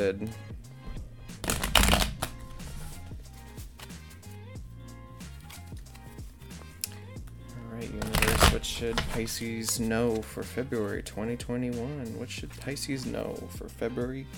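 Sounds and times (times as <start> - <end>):
speech: 0.0 - 0.7, 8.6 - 14.3
quiet music: 0.0 - 14.3
tarot cards being shuffled: 1.4 - 4.4, 5.2 - 7.0, 8.0 - 10.3.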